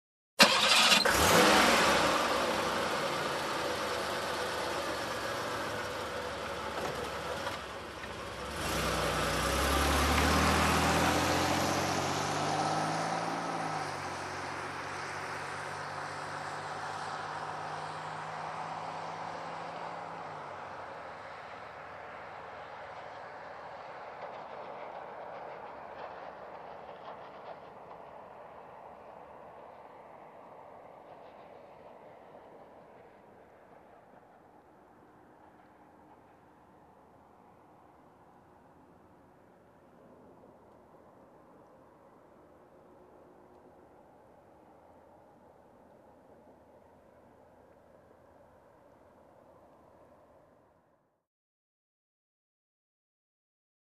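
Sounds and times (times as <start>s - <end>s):
car engine ignition: 0.4s - 3.0s
car driving off: 0.4s - 20.9s.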